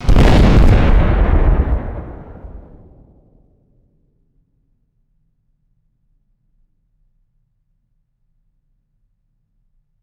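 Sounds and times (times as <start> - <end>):
loud punchy gas explosion blast: 0.0 - 3.4.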